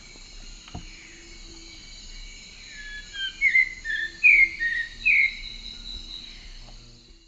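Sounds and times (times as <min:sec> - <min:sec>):
steady high insect hum in eastern lowlands of South America: 0:00.0 - 0:07.2
red-crowned ant tanager Habia rubica song: 0:02.7 - 0:06.3.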